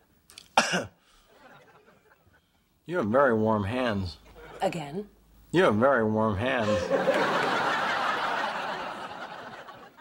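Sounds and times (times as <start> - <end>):
patient coughing during a medical exam: 0.6 - 1.0
speech: 0.7 - 1.0, 2.9 - 7.4
laughter: 6.6 - 9.9.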